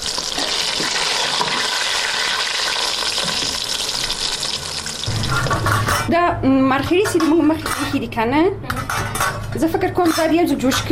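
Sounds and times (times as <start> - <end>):
onions sizzling and frying in a pan: 0.0 - 5.6
speech: 6.1 - 8.8, 9.5 - 10.9.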